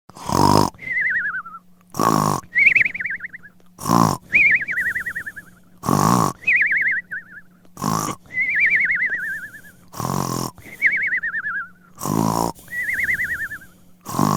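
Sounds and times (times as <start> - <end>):
funny humorous cartoon snoring: 0.1 - 1.1, 1.9 - 2.9, 3.8 - 6.9, 7.8 - 11.1, 11.9 - 14.3.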